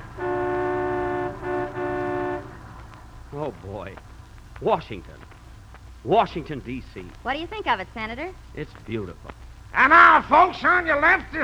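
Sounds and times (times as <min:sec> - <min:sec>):
vehicle horn blaring in city traffic: 0:00.0 - 0:02.8
low rumble of engines in city traffic: 0:00.0 - 0:11.4
speech: 0:03.4 - 0:05.3, 0:06.0 - 0:11.4.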